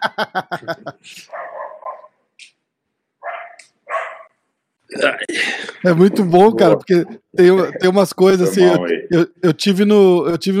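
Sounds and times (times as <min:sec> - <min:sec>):
laughter: 0:00.0 - 0:01.2
speech: 0:00.1 - 0:01.5, 0:05.0 - 0:10.5
dog barking: 0:01.3 - 0:02.2, 0:03.2 - 0:04.4.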